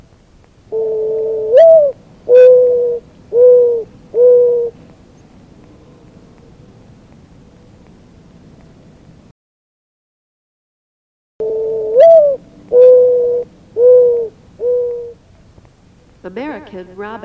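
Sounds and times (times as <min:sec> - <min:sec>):
mourning dove cooing: 0:00.7 - 0:09.0, 0:11.4 - 0:15.5
speech: 0:16.4 - 0:17.2.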